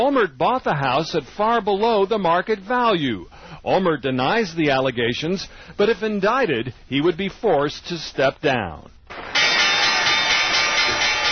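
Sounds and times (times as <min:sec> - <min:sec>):
speech: 0:00.0 - 0:09.3
opening bell ringing at the New York Stock Exchange: 0:09.1 - 0:11.2.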